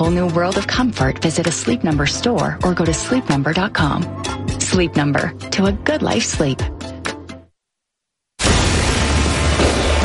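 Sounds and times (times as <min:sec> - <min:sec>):
speech: 0:00.0 - 0:06.8
fireworks exploding: 0:08.4 - 0:10.0.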